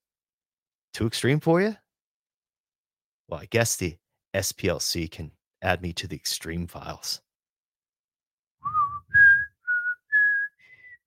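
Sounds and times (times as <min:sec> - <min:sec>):
speech: 0:01.0 - 0:01.8, 0:03.3 - 0:07.2
person whistling a short tune: 0:08.6 - 0:11.0.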